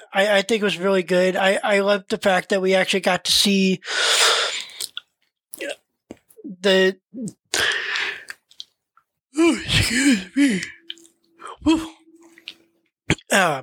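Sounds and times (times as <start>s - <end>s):
speech: 0.1s - 4.4s, 6.6s - 7.8s, 9.4s - 10.8s, 11.6s - 12.0s, 13.3s - 13.6s
person yawning with mumbled vocal sounds: 9.4s - 12.6s.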